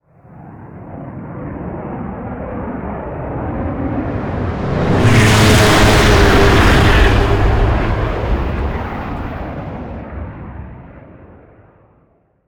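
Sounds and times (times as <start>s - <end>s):
flyer vehicles flying by: 3.2s - 10.0s.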